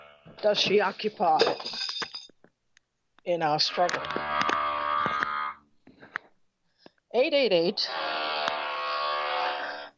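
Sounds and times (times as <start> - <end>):
speech: 0.4 - 1.9, 3.2 - 4.2, 7.1 - 8.2
steady electric buzzing: 3.8 - 5.6, 7.8 - 9.9.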